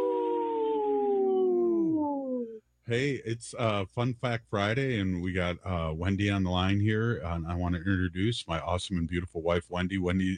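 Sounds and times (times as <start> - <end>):
wolf howling: 0.0 - 2.6
speech: 2.9 - 10.3.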